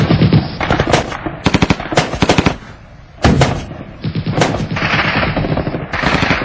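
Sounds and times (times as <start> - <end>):
machine-gun and rifle fire: 0.0 - 6.4.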